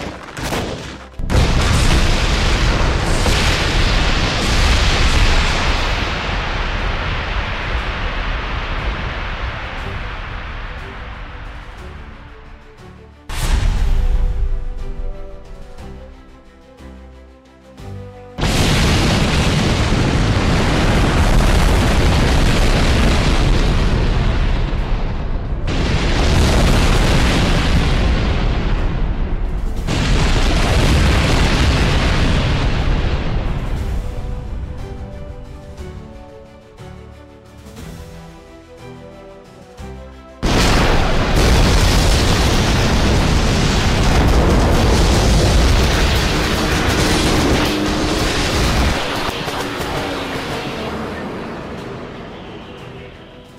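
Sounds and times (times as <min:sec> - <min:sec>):
multiple missile launches: 0:00.5 - 0:10.2, 0:13.3 - 0:14.4, 0:18.4 - 0:34.0, 0:40.4 - 0:51.8.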